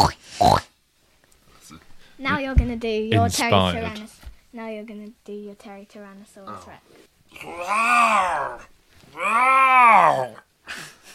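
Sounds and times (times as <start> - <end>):
person imitating pig grunting and oinking: 0.0 - 0.7, 6.5 - 10.5
speech: 2.2 - 10.9.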